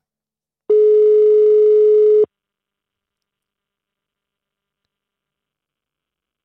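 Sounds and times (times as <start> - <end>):
telephone ringing tone: 0.7 - 2.3.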